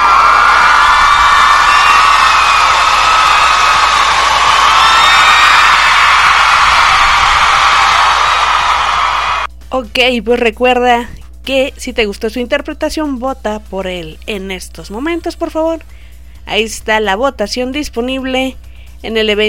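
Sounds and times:
audience cheering and whooping at a karaoke contest: 0.0 - 9.5
shrill yells from audience: 0.0 - 9.5
speech: 9.8 - 19.4.

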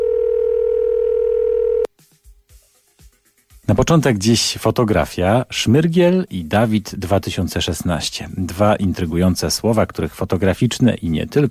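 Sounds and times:
telephone dial tone: 0.0 - 1.9
speech: 3.7 - 11.4.

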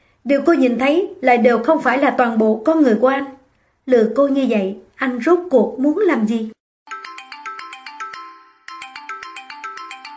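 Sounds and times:
speech: 0.2 - 6.6
mobile phone ringing with an electronic melody: 6.9 - 10.1.

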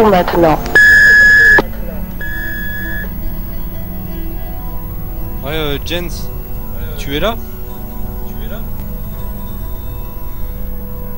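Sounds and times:
speech: 0.0 - 0.8, 5.5 - 6.4, 7.0 - 7.5
electronic beep tone on a call-in radio show: 0.7 - 3.3.

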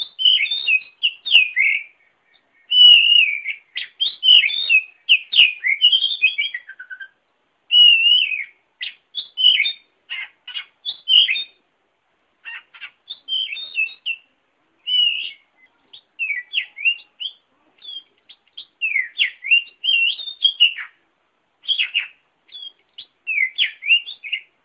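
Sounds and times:
Oriental magpie-robin singing: 0.0 - 11.6, 12.4 - 21.0, 21.6 - 24.6.

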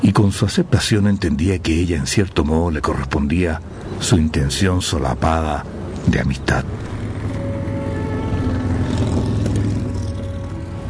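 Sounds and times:
speech: 0.1 - 6.9
motorcycle being ridden: 5.6 - 10.8.

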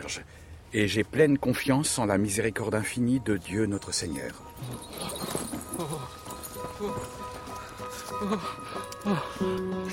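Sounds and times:
speech: 0.0 - 4.4
horse hooves clip-clopping: 4.6 - 9.9.

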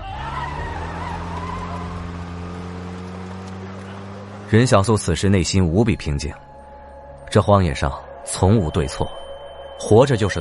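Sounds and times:
car speeding off in a hurry: 0.0 - 5.3
speech: 4.5 - 6.5, 7.3 - 9.2, 9.8 - 10.3.

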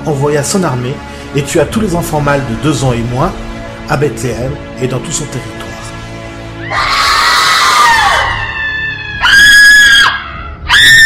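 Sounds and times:
speech: 0.0 - 5.6
children shouting: 6.6 - 11.0
crowd screaming and crying: 6.6 - 11.0.

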